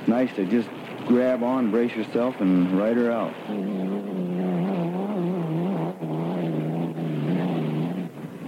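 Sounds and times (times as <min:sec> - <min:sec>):
racing powerboat engine roaring: 0:00.0 - 0:08.4
speech: 0:00.2 - 0:04.4.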